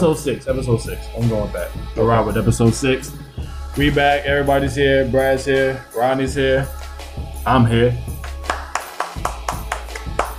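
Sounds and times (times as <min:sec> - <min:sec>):
speech: 0:00.0 - 0:03.2, 0:03.8 - 0:08.3
sharp evenly spaced claps: 0:08.2 - 0:10.3.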